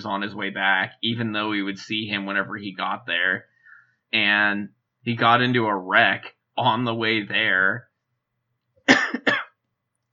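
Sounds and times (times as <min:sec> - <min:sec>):
speech: 0:00.0 - 0:03.5, 0:04.1 - 0:07.9
harsh loud coughs: 0:08.9 - 0:09.6.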